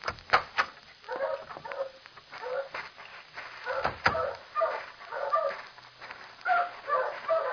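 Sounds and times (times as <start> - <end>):
several dogs barking in a kennel: 1.1 - 2.8, 3.6 - 5.6, 6.5 - 7.5.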